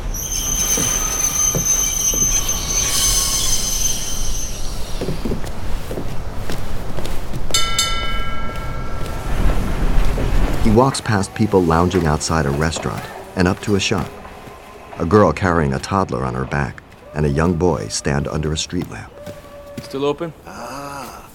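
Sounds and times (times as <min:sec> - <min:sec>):
tram wheels squealing on the rails: 0:00.0 - 0:06.0, 0:09.1 - 0:18.8
streetcar rumbling along its track toward a stop: 0:00.0 - 0:19.2
speech: 0:10.8 - 0:14.2, 0:15.0 - 0:19.2, 0:19.8 - 0:20.6.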